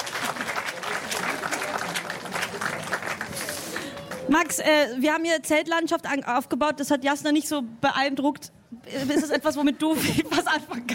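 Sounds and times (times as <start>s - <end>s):
audience applause: 0.0s - 4.6s
speech: 4.3s - 10.9s.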